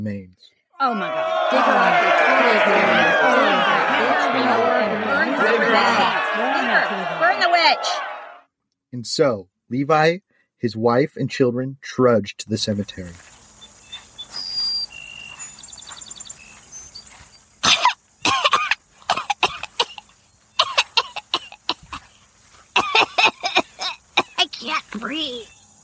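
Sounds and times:
speech: 0.0 - 8.1, 8.9 - 13.4
laughter: 0.8 - 8.4, 18.5 - 20.0, 20.6 - 22.0, 22.8 - 24.5
person coughing: 17.6 - 20.0, 20.6 - 22.0, 22.8 - 24.4.

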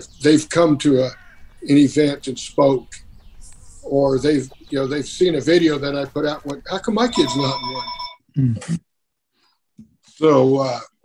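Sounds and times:
speech: 0.0 - 3.0, 3.8 - 8.9, 10.2 - 10.9
telephone ringing with a bright electronic tone: 7.0 - 8.3.

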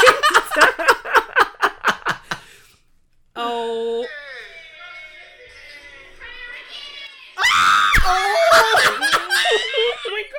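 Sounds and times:
person laughing in rapid bursts: 0.0 - 2.4, 8.1 - 10.2
person shrieking and screaming: 7.4 - 9.1.

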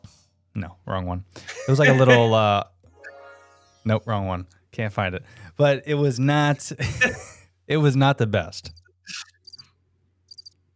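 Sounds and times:
speech: 0.6 - 2.7, 3.8 - 9.3
laughter: 1.4 - 2.4, 6.8 - 7.4
cricket chirping soundboard effect: 10.3 - 10.6.

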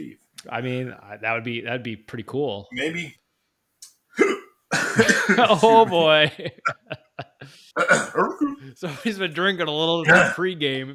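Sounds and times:
speech: 0.0 - 3.2, 5.0 - 6.8, 7.8 - 10.9
hiccups: 4.2 - 4.6, 7.8 - 8.6, 10.0 - 10.4
laughter: 5.0 - 7.6
strained vocal noise: 10.0 - 10.4.

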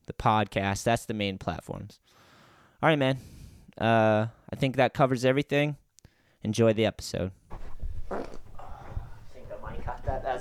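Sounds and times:
speech: 0.2 - 2.2, 2.8 - 5.8, 6.4 - 7.4
fart into a microphone: 7.5 - 9.3.

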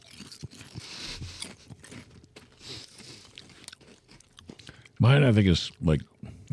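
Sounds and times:
biting and crunching stale paprika potato chips: 0.0 - 5.0
speech: 5.0 - 6.1.

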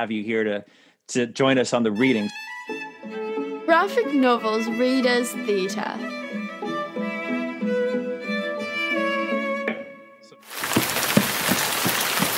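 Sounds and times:
speech: 0.0 - 2.8, 3.7 - 6.2
gentle melodic music: 2.0 - 10.4
heavy rain: 10.5 - 12.3
rain drops pattering on a surface: 10.5 - 12.3.

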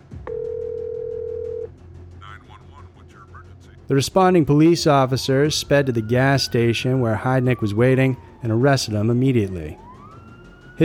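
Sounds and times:
telephone dial tone: 0.3 - 1.7
speech: 3.9 - 9.8.

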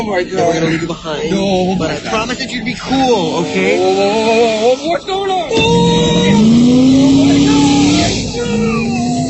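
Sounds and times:
speech: 0.0 - 7.7
car engine roaring as the car speeds up: 0.0 - 9.2
rough gritty road and tire noise: 1.5 - 9.2
car skidding: 2.9 - 9.2.

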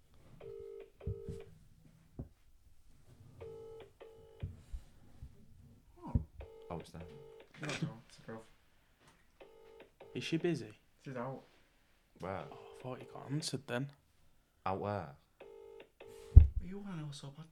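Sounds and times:
phone call ringing tone in double bursts: 0.4 - 1.5, 3.4 - 4.6, 6.4 - 7.6, 9.4 - 10.6, 12.4 - 13.3, 15.4 - 16.4
speech: 10.2 - 11.5, 12.2 - 14.0, 14.6 - 15.2, 16.6 - 17.5.

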